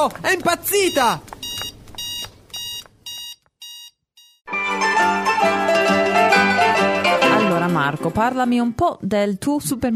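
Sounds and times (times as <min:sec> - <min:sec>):
speech: 0:00.0 - 0:01.3, 0:07.9 - 0:09.9
shop security alarm beeping: 0:00.8 - 0:04.5
loud full music: 0:04.5 - 0:08.3.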